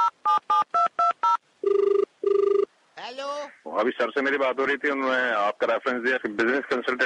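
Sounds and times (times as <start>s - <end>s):
touch-tone keypad beeps: 0.0s - 2.7s
speech: 3.8s - 7.0s.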